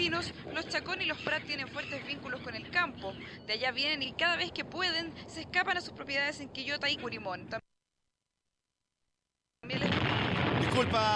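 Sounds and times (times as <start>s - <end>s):
speech: 0.1s - 7.7s, 10.8s - 11.1s
heavy warship gun blast: 9.8s - 11.1s.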